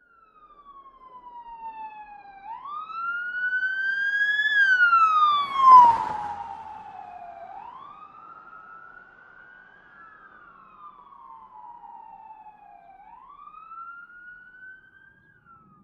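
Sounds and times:
police siren on medium car passing by: 0.0s - 15.8s.

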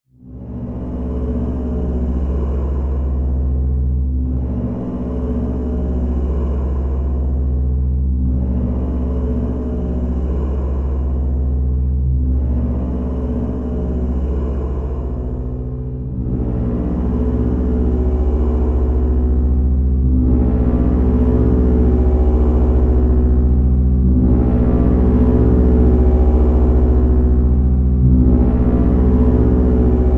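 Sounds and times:
deep low bass: 0.0s - 30.1s.

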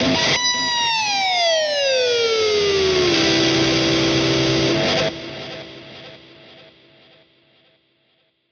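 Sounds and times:
electric guitar scream: 0.0s - 5.0s.

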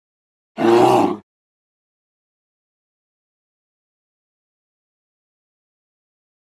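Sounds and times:
grizzly bear growling: 0.6s - 1.2s.

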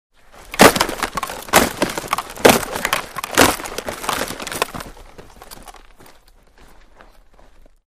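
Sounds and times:
multiple football block impacts: 0.5s - 4.8s.

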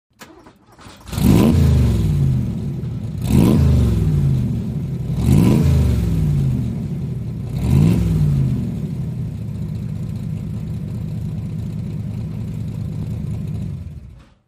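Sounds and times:
Cobra car engine starting idling and shutting off: 0.2s - 14.4s.

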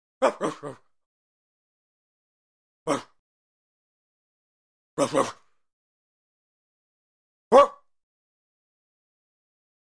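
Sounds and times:
laughter: 0.2s - 0.9s, 5.0s - 5.4s
dog barking: 7.5s - 7.8s.

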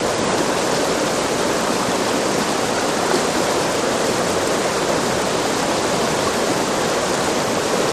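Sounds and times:
fast river flowing: 0.0s - 7.9s.

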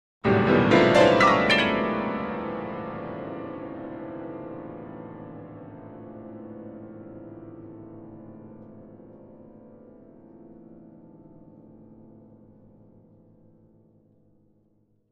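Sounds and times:
grand piano ascending chords: 0.4s - 2.7s.

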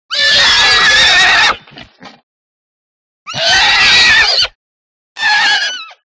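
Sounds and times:
angry horse whinnying: 0.1s - 2.0s, 3.3s - 4.6s, 5.2s - 6.0s.

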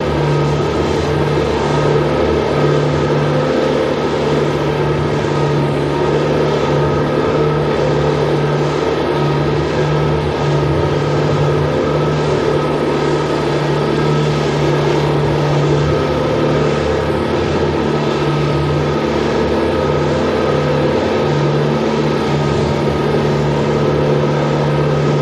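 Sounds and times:
heavy duty electric motor: 0.0s - 25.1s.

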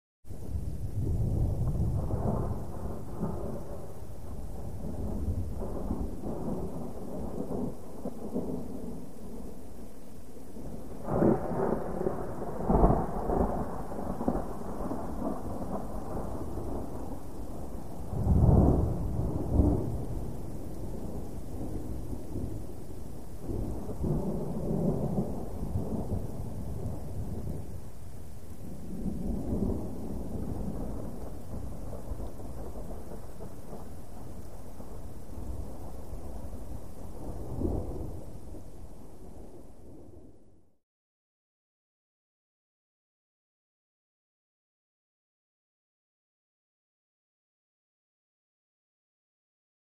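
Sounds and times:
medium distant thunder: 0.4s - 9.6s, 10.6s - 27.8s, 28.6s - 38.7s.

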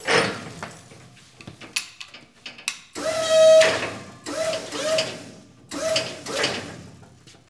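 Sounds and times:
electric forklift moving: 3.0s - 7.0s.

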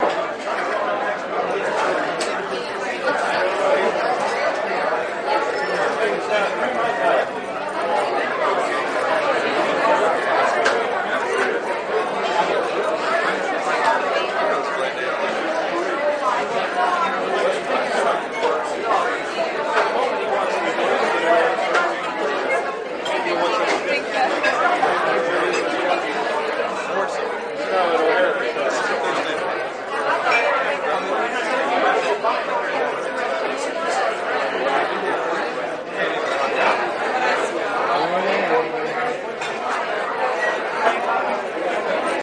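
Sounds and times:
medium crowd bar ambience: 0.0s - 42.2s.

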